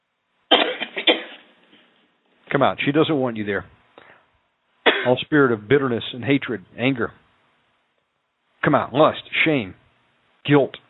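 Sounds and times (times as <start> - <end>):
deep coughing: 0.5 - 1.5, 4.8 - 5.2
speech: 2.5 - 3.8, 5.0 - 7.2, 8.6 - 9.8, 10.4 - 10.8
raspy breath: 4.0 - 4.3.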